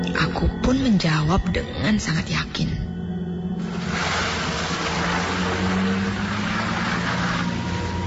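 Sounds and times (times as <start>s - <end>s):
speech: 0.1s - 2.8s
broad rushing road noise: 3.6s - 8.0s
car engine rumbling: 3.6s - 8.0s.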